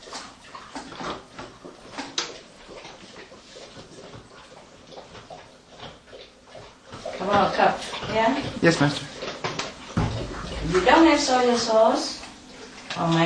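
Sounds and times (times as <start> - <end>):
speech: 7.3 - 9.1, 10.7 - 12.2, 13.0 - 13.2
filtered water pouring while cooking: 10.0 - 13.2.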